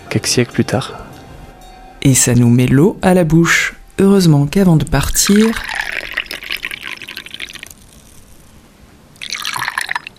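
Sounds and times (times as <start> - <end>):
speech: 0.1 - 1.1, 2.0 - 5.8
meat broth being poured: 5.1 - 8.6, 9.2 - 10.1.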